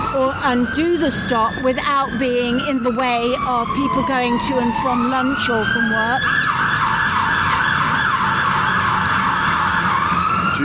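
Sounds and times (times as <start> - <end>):
fire engine siren wailing: 0.0 - 10.6
street traffic rumble at a major junction on King William Street: 0.0 - 10.6
speech: 0.1 - 6.9.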